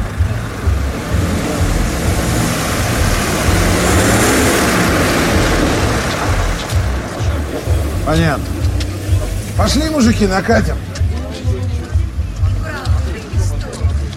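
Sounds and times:
car with passengers pulling away, engine rumbling: 0.0s - 14.1s
speech: 8.2s - 8.5s, 9.6s - 10.9s.

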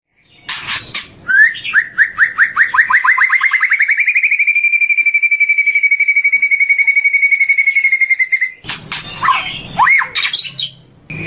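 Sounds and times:
White-rumped shama song of whistled notes and trill: 0.2s - 11.2s.

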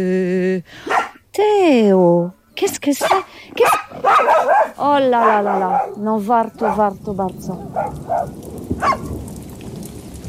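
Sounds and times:
speech: 0.0s - 9.1s
rain falling with a dense steady patter: 3.7s - 10.2s.

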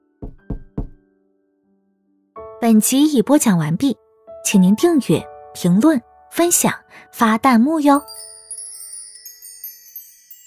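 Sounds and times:
knocking on a door: 0.2s - 1.0s
speech: 2.6s - 8.3s.

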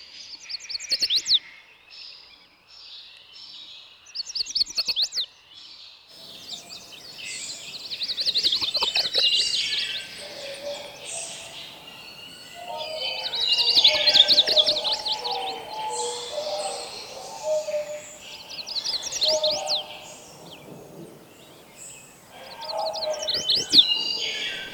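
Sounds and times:
male chestnut-sided warbler singing: 6.2s - 24.7s
other bird calls: 6.2s - 24.7s.

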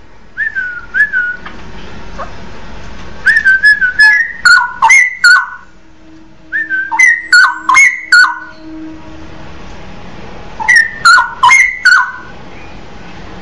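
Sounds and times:
Oriental magpie-robin whistled song with clicking accents: 0.4s - 1.5s, 3.2s - 5.7s, 6.5s - 8.7s, 10.6s - 12.8s.

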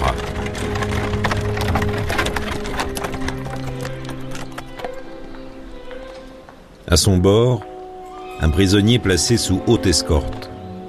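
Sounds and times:
horse-drawn carriage wooden creaks and rattles: 0.0s - 6.7s
horse hooves clip-clopping: 0.0s - 6.9s
speech: 6.9s - 7.7s, 8.4s - 10.5s.

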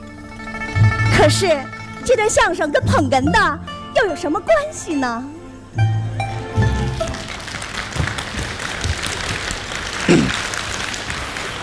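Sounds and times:
speech: 1.2s - 5.9s
audience applause at a crosstalk comedy performance: 6.6s - 11.6s.

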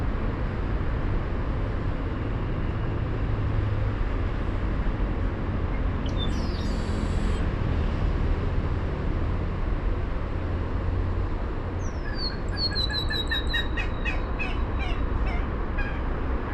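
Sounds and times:
constant low roar of road traffic in Bogotá: 0.0s - 16.5s
Yellow-hooded blackbird calling: 6.0s - 7.4s, 11.8s - 16.0s.

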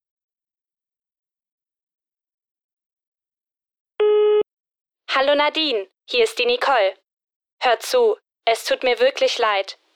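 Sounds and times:
telephone line beep before a phone message: 4.0s - 4.4s
speech: 5.2s - 7.0s, 7.6s - 9.8s.

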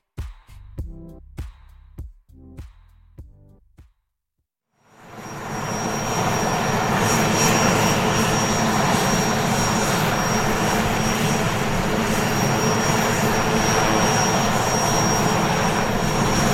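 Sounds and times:
Puma military helicopter turbine roar arriving in northern Mali: 4.9s - 16.5s
thin high whine of helicopter turbine: 4.9s - 16.5s.

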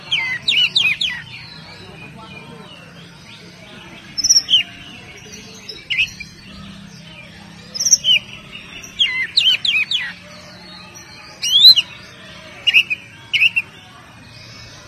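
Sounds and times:
Oriental magpie-robin song: 0.0s - 2.2s, 4.1s - 6.7s, 7.6s - 12.0s, 12.6s - 13.8s.

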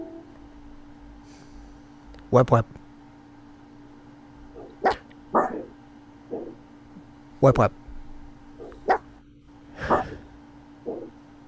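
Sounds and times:
faint hum: 0.0s - 11.4s
speech: 2.3s - 2.8s, 7.4s - 7.8s
dog barking: 4.6s - 6.6s, 8.6s - 9.1s, 9.8s - 10.1s, 10.9s - 11.1s.

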